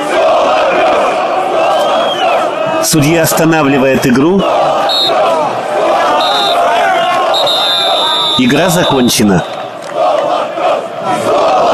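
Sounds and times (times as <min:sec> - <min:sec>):
football fans shouting in a stadium: 0:00.0 - 0:11.7
speech: 0:02.9 - 0:05.2, 0:08.4 - 0:09.6.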